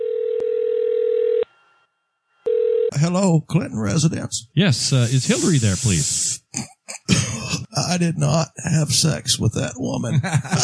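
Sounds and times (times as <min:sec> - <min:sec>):
telephone dial tone: 0:00.0 - 0:01.4, 0:02.5 - 0:02.9
speech: 0:03.0 - 0:06.7, 0:07.9 - 0:10.6
laughter: 0:06.5 - 0:10.6.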